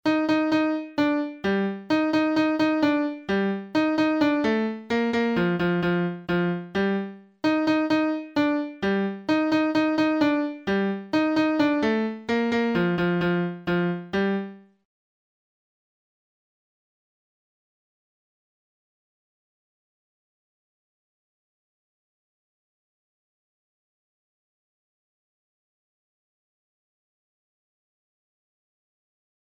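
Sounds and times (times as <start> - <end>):
melody: 0.1 - 14.5.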